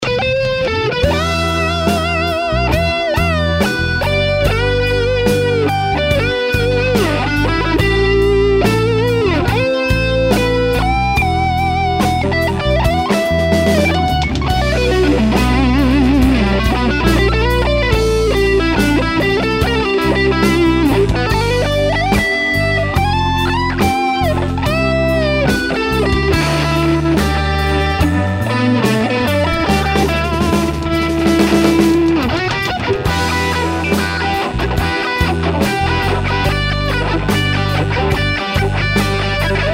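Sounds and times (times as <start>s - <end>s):
instrumental solo: 0.0s - 39.7s.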